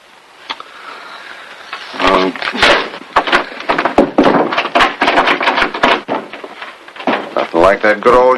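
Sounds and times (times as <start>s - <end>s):
speech: 2.2s - 3.0s, 7.4s - 8.3s
shoulder and hip thudding against a wooden door: 2.6s - 7.4s.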